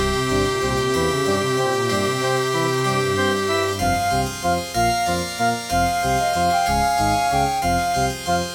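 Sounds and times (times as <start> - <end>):
Gravis UltraSound Extreme sound card audio: 0.2 - 8.5.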